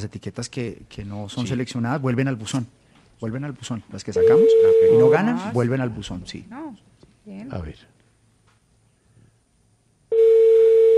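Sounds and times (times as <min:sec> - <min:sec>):
speech: 0:00.0 - 0:07.9
landline telephone tone: 0:04.2 - 0:05.5, 0:10.1 - 0:10.9.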